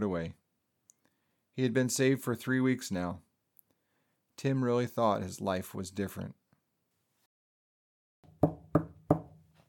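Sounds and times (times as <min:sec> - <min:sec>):
speech: 0:00.0 - 0:00.4, 0:01.6 - 0:03.3, 0:04.4 - 0:06.4
firm knocks on a front door: 0:08.2 - 0:09.4.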